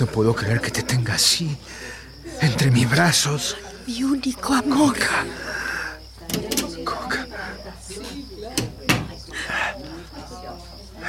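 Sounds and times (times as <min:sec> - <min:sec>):
speech: 0:00.0 - 0:05.6
faint murmuring voices: 0:00.0 - 0:11.0
soft hiss: 0:00.0 - 0:11.0
door closing with sharp thuds: 0:06.3 - 0:06.8.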